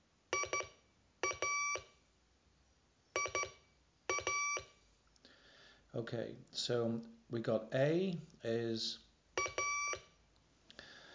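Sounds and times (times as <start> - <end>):
Morse code electronic beeps sending the letters I and A: 0.3 - 1.9, 3.2 - 4.8, 9.4 - 10.1
speech: 6.0 - 9.0.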